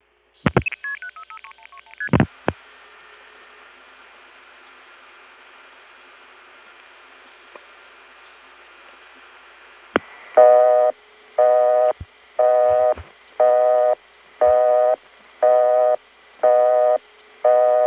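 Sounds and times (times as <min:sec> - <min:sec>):
telephone busy signal: 0:10.4 - 0:17.8.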